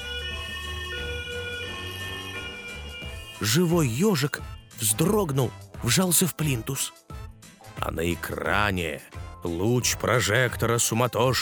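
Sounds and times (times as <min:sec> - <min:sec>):
police car siren from a screen: 0:00.0 - 0:04.6
speech: 0:03.4 - 0:07.1, 0:07.8 - 0:11.4.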